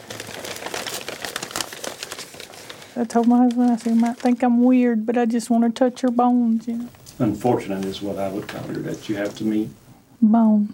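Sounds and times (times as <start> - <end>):
brown paper crinkling as a skull is unwrapped: 0.0 - 4.9, 7.0 - 9.7
speech: 3.0 - 10.7.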